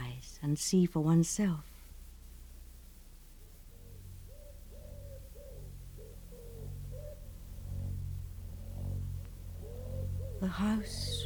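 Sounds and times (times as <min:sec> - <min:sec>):
faint hum: 0:00.0 - 0:11.2
speech: 0:00.4 - 0:01.7, 0:10.5 - 0:11.2
wood pigeons cooing: 0:03.7 - 0:11.2.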